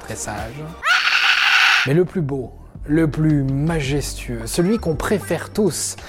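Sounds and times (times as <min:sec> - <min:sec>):
speech: 0:00.1 - 0:00.9, 0:01.8 - 0:06.0
loud harsh raspy angry scream: 0:00.8 - 0:01.9.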